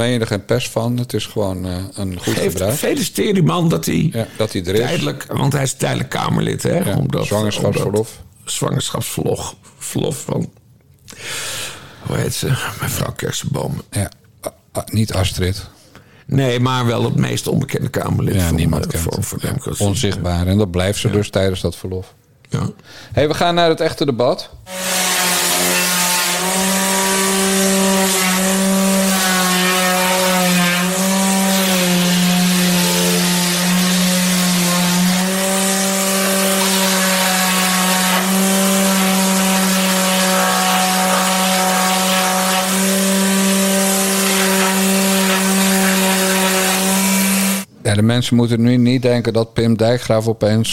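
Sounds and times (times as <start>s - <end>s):
speech: 0.0s - 10.6s, 11.2s - 25.1s, 48.2s - 50.7s
large electric sanding machine droning: 24.7s - 47.7s.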